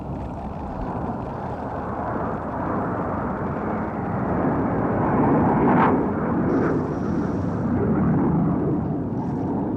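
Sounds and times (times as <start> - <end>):
jet aircraft passing overhead: 0.0 - 9.7.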